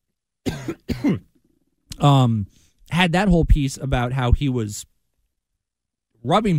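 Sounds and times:
sharp coughs: 0.4 - 1.3
brief faint throat clearing: 0.5 - 1.3
speech: 0.7 - 1.3, 2.0 - 4.9, 6.2 - 6.5.

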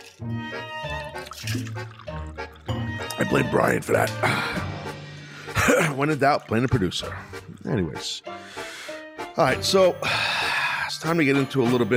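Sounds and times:
water pouring into a glass: 0.0 - 4.6, 5.7 - 7.8
speech: 1.4 - 2.5, 3.2 - 4.7, 6.0 - 8.3, 9.4 - 10.3, 11.0 - 11.9.

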